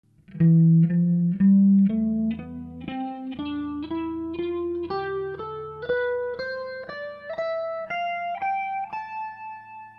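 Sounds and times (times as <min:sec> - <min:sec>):
guitar: 0:00.0 - 0:09.9.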